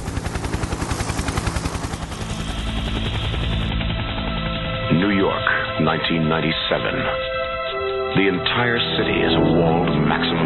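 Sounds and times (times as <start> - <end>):
helicopter rotor thumping in a 1981 sci-fi movie trailer: 0.0 - 5.4
speech: 5.0 - 7.4, 8.2 - 10.4.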